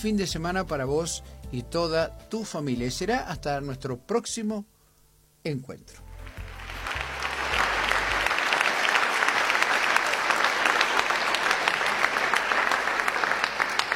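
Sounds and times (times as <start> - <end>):
speech: 0.0 - 4.7, 5.4 - 6.0
large crowd applauding: 6.2 - 13.9.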